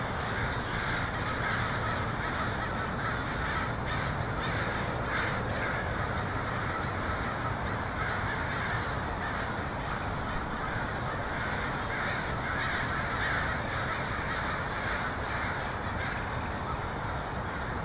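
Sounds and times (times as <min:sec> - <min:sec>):
dense flock of crows cawing in Portland: 0:00.0 - 0:17.8.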